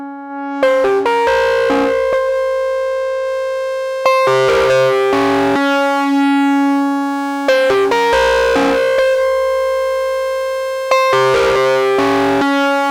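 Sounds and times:
drum and bass chase piano music: 0.4 - 6.5, 7.4 - 12.8.

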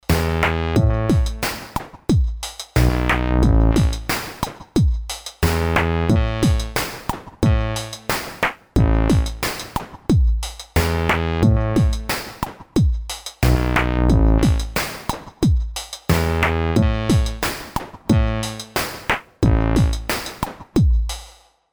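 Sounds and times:
Artiphon ORBA 2 bass: 0.0 - 1.6, 2.8 - 4.2, 5.4 - 6.8, 7.4 - 8.2, 8.8 - 9.6, 10.8 - 12.2, 13.4 - 14.8, 16.1 - 18.8, 19.4 - 20.2
Artiphon ORBA 2 drums: 0.0 - 21.4.

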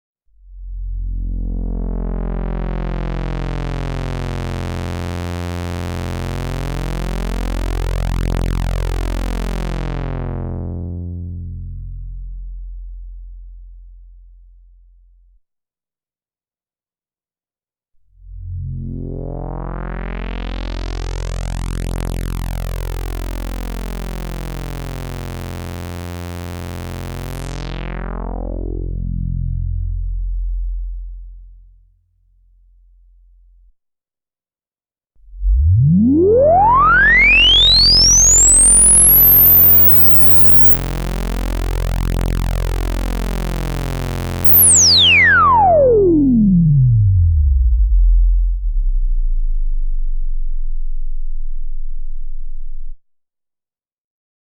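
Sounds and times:
synthesizer filter sweep with increasing resonance: 1.2 - 12.1, 18.2 - 31.4, 35.2 - 53.0.

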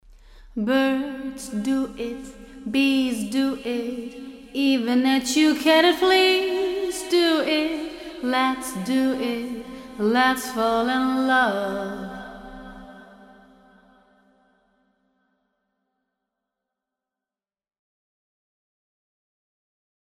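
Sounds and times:
vocal with plate echo: 0.1 - 14.0.

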